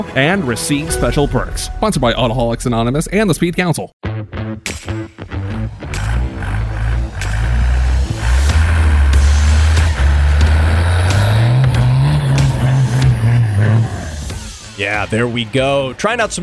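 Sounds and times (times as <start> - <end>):
speech: 0.0 - 4.0, 14.8 - 16.4
1991 Dodge W250 Cummins 12-valve diesel pickup truck engine revving: 5.3 - 14.8.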